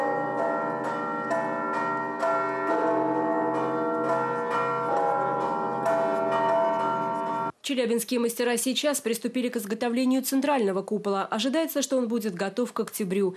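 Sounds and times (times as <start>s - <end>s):
church bells ringing in an overlapping peal: 0.0s - 7.5s
speech: 7.7s - 13.3s.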